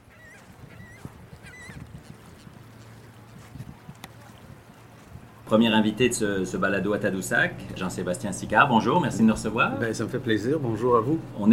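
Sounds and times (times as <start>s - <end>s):
honking bird calls: 0.0s - 2.5s
faint splashes: 0.0s - 5.5s
low engine-like hum at the shoreline: 2.4s - 11.5s
speech: 5.5s - 11.5s.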